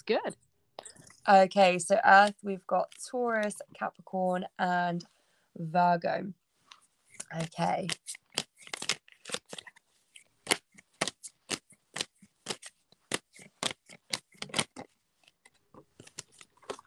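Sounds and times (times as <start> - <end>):
speech: 0.0 - 0.5, 1.3 - 6.4, 7.3 - 8.2
tarot cards being shuffled and drawn: 6.7 - 16.8.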